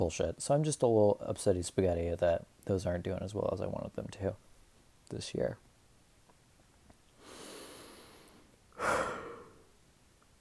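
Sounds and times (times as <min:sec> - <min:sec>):
speech: 0:00.0 - 0:04.5, 0:05.1 - 0:05.6
person yawning: 0:08.8 - 0:09.7.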